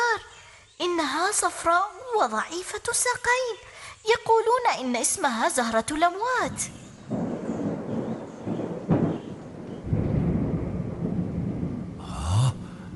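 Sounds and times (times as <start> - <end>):
speech: 1.0 - 7.2
thunder rumbling in a storm: 6.5 - 12.9.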